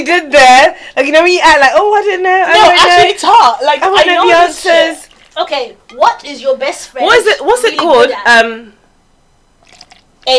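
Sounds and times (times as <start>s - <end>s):
speech: 0.0s - 8.8s
vodka pouring into a cup: 5.0s - 5.4s, 9.6s - 10.3s.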